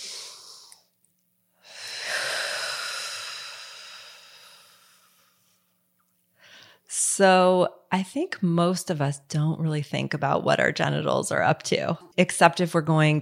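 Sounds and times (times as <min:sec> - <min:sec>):
deep breathing as a breathing exercise: 0:00.0 - 0:00.9, 0:01.6 - 0:05.8, 0:06.4 - 0:06.9
speech: 0:06.9 - 0:13.1.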